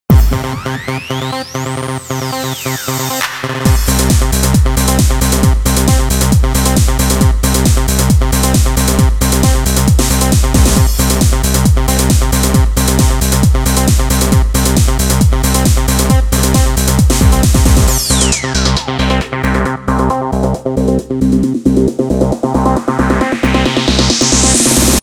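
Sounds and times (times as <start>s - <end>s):
fat beat from Sanyo SCP-6780 phone: 0.1s - 25.0s.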